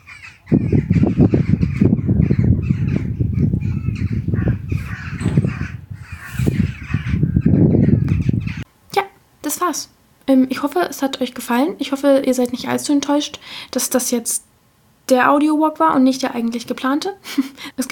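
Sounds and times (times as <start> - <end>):
birds chirping at dawn: 0.0 - 8.7
speech: 9.7 - 14.5, 15.1 - 17.9.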